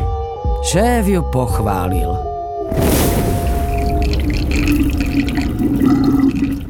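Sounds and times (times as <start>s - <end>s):
speech: 0.6s - 2.9s, 4.3s - 6.6s
stormy sea waves roaring: 2.7s - 6.6s.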